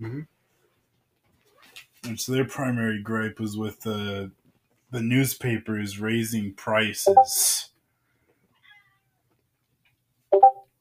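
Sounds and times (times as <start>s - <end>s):
speech: 2.0s - 7.7s
young mixed-breed house cat meowing for attention: 8.5s - 9.2s.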